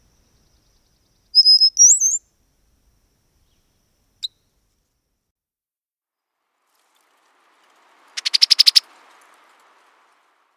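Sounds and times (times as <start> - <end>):
Brown-headed Cowbird high chips: 8.0 - 9.3.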